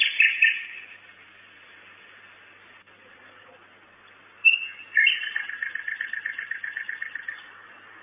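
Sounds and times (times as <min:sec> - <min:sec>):
common nightingale singing at a nest box at night: 0:00.0 - 0:01.8, 0:04.0 - 0:08.0.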